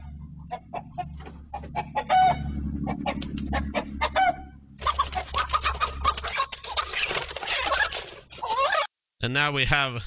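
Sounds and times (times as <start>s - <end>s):
low rumble: 0.0s - 7.5s
rooster clucking: 0.0s - 8.9s
speech: 9.4s - 10.0s.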